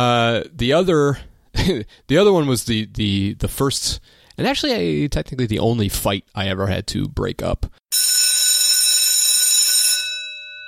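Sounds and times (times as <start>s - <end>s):
speech: 0.0s - 7.8s
electric school bell ringing: 7.9s - 10.6s.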